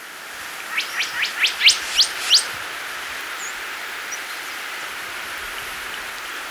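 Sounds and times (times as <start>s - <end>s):
faint background hiss: 0.0s - 6.5s
Tit-like dacnis calling with high chirps in Ecuador: 0.6s - 2.7s
speech: 0.8s - 2.6s.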